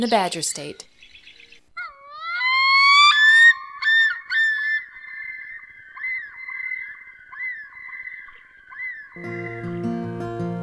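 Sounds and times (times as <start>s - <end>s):
speech: 0.0s - 0.9s
common loon wailing with long rising whistled notes in Wisconsin: 1.8s - 9.5s.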